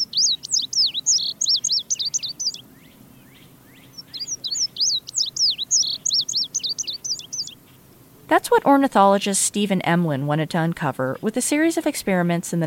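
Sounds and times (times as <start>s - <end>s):
Indigo Bunting singing: 0.0s - 7.9s
speech: 8.3s - 12.6s.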